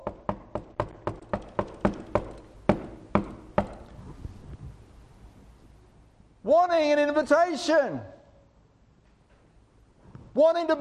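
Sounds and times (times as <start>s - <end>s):
sharp knocks on a door: 0.0s - 3.8s
speech: 6.8s - 8.1s, 10.4s - 10.7s.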